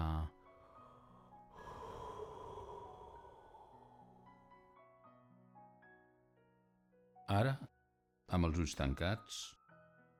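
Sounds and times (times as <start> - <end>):
soft music: 0.0 - 10.1
person yawning: 1.5 - 4.2
speech: 7.3 - 7.7, 8.3 - 9.6.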